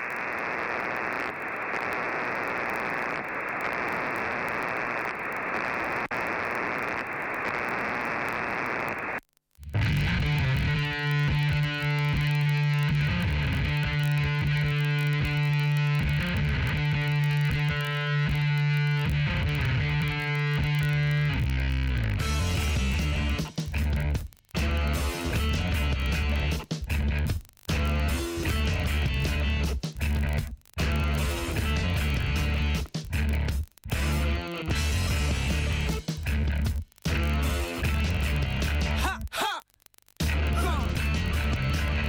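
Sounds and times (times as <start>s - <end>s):
harsh static-like wash of distorted noise: 0.0s - 42.0s
rock song with heavy band, droning bass and rhythmic chords: 9.7s - 39.2s, 40.2s - 42.0s.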